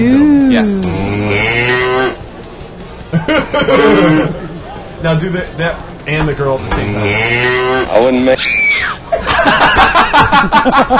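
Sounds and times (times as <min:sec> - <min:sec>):
speech: 0:00.0 - 0:01.0, 0:03.5 - 0:04.4, 0:05.0 - 0:10.9
cow mooing: 0:00.8 - 0:02.2, 0:06.8 - 0:08.0
laughter: 0:03.1 - 0:04.4, 0:09.1 - 0:10.9.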